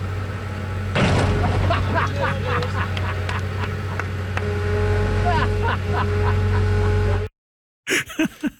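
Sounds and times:
excavator engine drone: 0.0s - 7.3s
car metal crunching and scraping as an excavator crushes it: 1.0s - 3.9s
voices: 1.3s - 4.0s
laughter: 1.6s - 4.0s, 5.2s - 7.2s, 7.9s - 8.5s.

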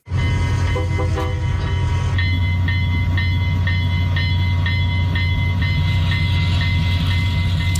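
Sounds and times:
restored old scenic tour train running along the rails: 0.0s - 7.7s
high ringing metallic tones: 0.1s - 7.7s.

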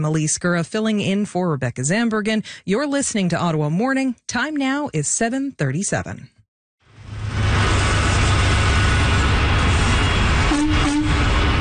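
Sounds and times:
speech: 0.0s - 6.4s
double-decker tractor trailer engine pulling up to a church: 6.8s - 11.5s.

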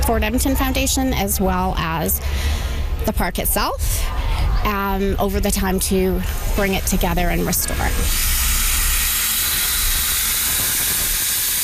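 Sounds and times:
low rumble: 0.0s - 11.2s
speech: 0.1s - 8.4s
steam venting from a restored train at Fort Edmonton Park: 6.2s - 11.6s.

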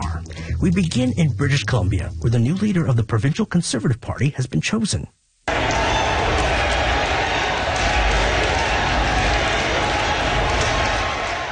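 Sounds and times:
speech: 0.6s - 5.2s
large indoor crowd cheering and chanting: 5.5s - 11.5s
clapping: 5.7s - 11.5s.

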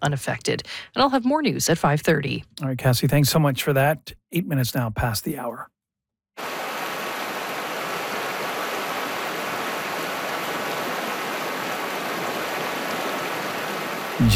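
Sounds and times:
speech: 0.0s - 5.7s
small river stream flowing: 6.4s - 14.3s.

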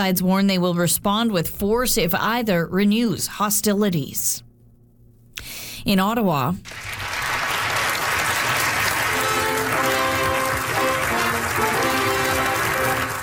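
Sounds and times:
speech: 0.0s - 4.5s, 5.4s - 7.2s
large crowd applauding at a ceremony: 6.7s - 13.2s
brassy fanfare at a ceremony: 7.6s - 13.2s.

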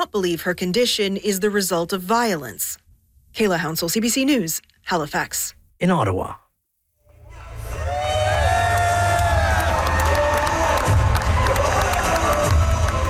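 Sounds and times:
speech: 0.0s - 2.8s, 3.4s - 6.4s
large crowd cheering with shouts and whoops: 7.2s - 13.0s.

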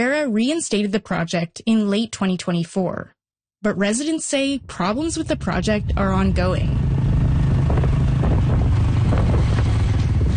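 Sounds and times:
speech: 0.0s - 6.9s
heavy wind buffeting the microphone: 4.4s - 10.3s
motorbike engine drone: 4.4s - 10.3s.

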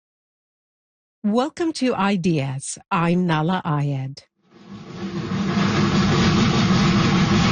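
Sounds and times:
speech: 1.2s - 4.3s
steam locomotive chugging: 4.6s - 7.5s.

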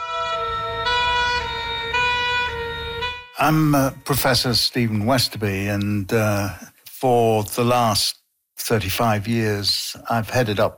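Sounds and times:
ambulance siren wailing in a two-tone pattern: 0.0s - 4.4s
speech: 3.4s - 10.7s.

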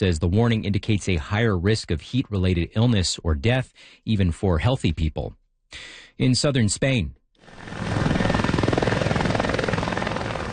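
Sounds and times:
speech: 0.0s - 7.9s
helicopters flying over a wildfire ferrying firefighters: 7.4s - 10.5s.

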